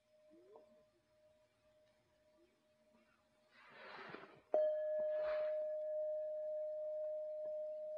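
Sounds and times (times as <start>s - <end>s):
single bell ringing: 4.6s - 7.9s.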